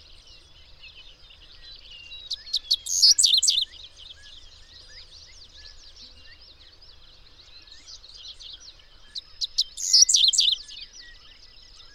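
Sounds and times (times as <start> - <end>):
bird twittering warble: 2.3 - 3.7, 9.4 - 10.7.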